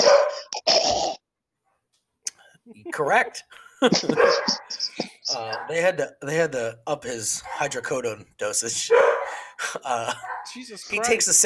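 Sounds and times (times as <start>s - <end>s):
dog barking: 0.0s - 0.5s, 3.9s - 6.0s, 7.3s - 8.0s, 8.7s - 9.5s, 10.1s - 11.4s
laughter: 2.8s - 11.4s
speech: 2.8s - 11.4s.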